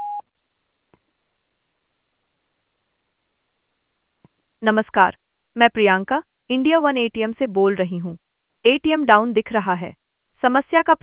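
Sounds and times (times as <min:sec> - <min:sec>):
voicemail electronic beep tone: 0:00.0 - 0:00.2
quiet telephone line hiss: 0:00.0 - 0:11.0
speech: 0:04.6 - 0:11.0.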